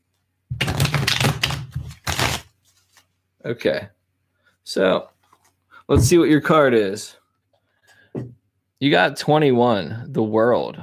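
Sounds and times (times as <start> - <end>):
tarot cards riffling in a bridge shuffle: 0.6 - 3.1
speech: 3.4 - 4.0, 4.7 - 5.1, 5.9 - 7.2, 8.2 - 10.8.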